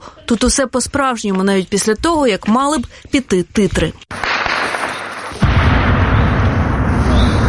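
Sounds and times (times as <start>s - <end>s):
speech: 0.3s - 4.2s
heavy gunfire at drones: 4.1s - 7.4s.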